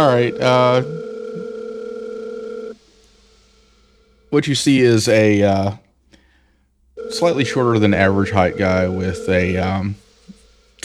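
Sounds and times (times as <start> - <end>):
speech: 0.0 - 1.0, 4.3 - 5.8, 7.1 - 10.0
work phone electronic telephone ring tone: 0.0 - 2.8, 7.0 - 10.0.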